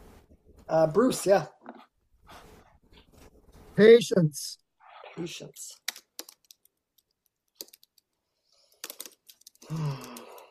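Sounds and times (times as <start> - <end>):
speech: 0.7 - 1.6, 3.8 - 4.6, 5.2 - 5.8
computer keyboard typing: 5.8 - 10.4.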